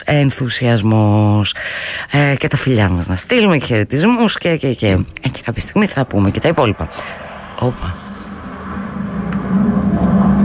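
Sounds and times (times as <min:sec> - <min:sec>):
speech: 0:00.0 - 0:08.0
Phantom military jet flying overhead: 0:05.0 - 0:10.4.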